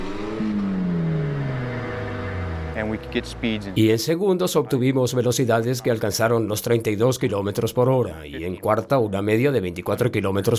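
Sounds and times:
manual-transmission car engine starting and revving: 0.0 - 4.1
speech: 2.8 - 10.5.

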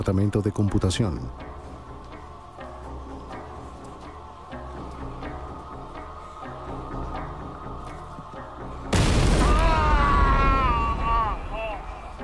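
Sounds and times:
speech: 0.0 - 1.5
bomb blast: 8.9 - 11.6.

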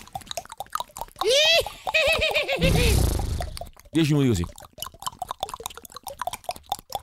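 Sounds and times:
quiet mouth clicks and mouth sounds: 0.0 - 7.0
person imitating a horse's whinny: 1.2 - 3.5
speech: 2.6 - 3.1, 4.0 - 4.6.

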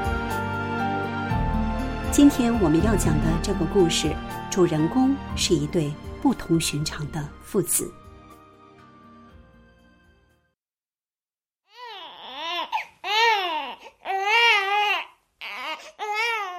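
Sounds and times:
soft music: 0.0 - 10.6
speech: 2.1 - 8.0
newborn baby crying in repeated wails: 11.7 - 16.5.

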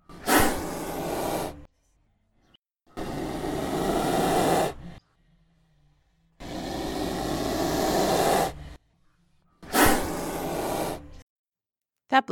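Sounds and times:
cobra hissing with a growly glottal hiss: 0.1 - 1.7, 2.9 - 5.0, 6.4 - 8.8, 9.6 - 11.2
speech: 12.1 - 12.3.

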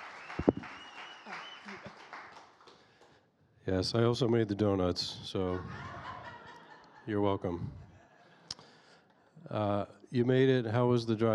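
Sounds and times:
audience applause: 0.0 - 2.8
speech: 3.7 - 5.9, 7.1 - 7.8, 9.5 - 11.3
laughter: 5.4 - 8.4.

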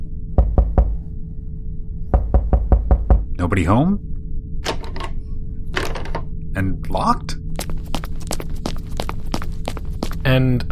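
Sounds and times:
low steady hum: 0.0 - 10.7
firm knocking on a door: 0.4 - 1.0, 2.2 - 3.3
speech: 3.4 - 4.1, 6.6 - 7.7, 10.2 - 10.7.

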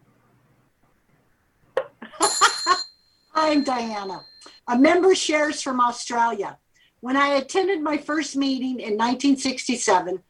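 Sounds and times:
small bell ringing: 2.2 - 4.6
speech: 3.4 - 10.2.

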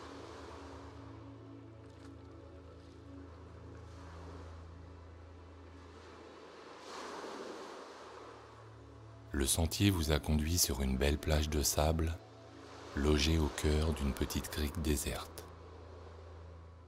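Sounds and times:
distant waves murmuring on shore: 9.3 - 15.5
speech: 9.4 - 12.2, 13.0 - 15.4.

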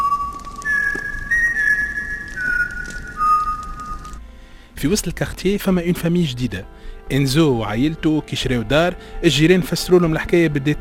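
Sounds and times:
eerie whistling in the middle of the night: 0.0 - 4.2
speech: 4.8 - 10.7.

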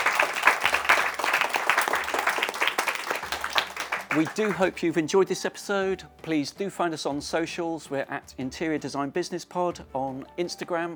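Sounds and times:
audience applauding: 0.0 - 4.8
speech: 4.2 - 10.9.

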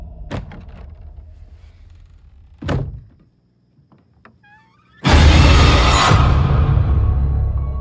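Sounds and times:
door slamming: 0.0 - 3.3, 4.3 - 7.7
dull wooden thunks: 2.4 - 4.4.

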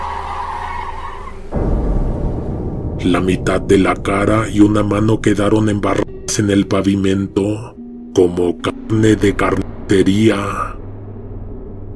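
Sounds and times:
car skidding with tire squeal while running someone over: 0.0 - 1.5
heavy low rumble of a car running someone over: 1.5 - 11.9
speech: 3.0 - 10.8.

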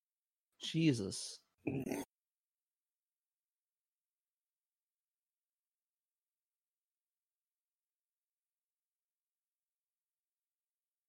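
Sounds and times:
speech: 0.6 - 2.0
throaty gulp swallowing: 1.7 - 2.1.

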